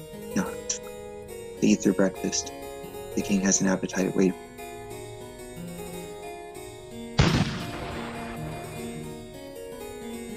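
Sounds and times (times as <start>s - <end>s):
hum: 0.0s - 10.3s
speech: 1.6s - 4.5s
distant cannon shot: 7.2s - 9.0s.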